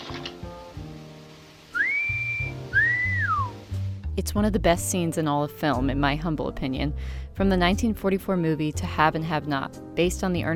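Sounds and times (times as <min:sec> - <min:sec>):
person whistling: 0:01.7 - 0:03.6
speech: 0:04.2 - 0:10.5.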